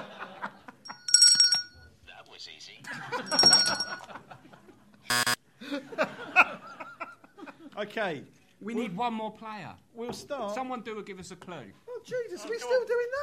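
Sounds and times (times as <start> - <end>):
laughter: 0.0 - 0.8, 2.9 - 7.8
bright bell-like dings: 0.9 - 1.9, 2.9 - 4.1
quiz game buzzer: 5.1 - 5.4
speech: 7.8 - 13.2.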